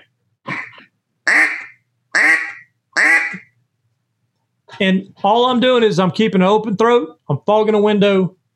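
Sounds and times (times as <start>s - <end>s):
duck call imitating mallard hen quacks: 0.5s - 3.6s
speech: 4.8s - 8.4s.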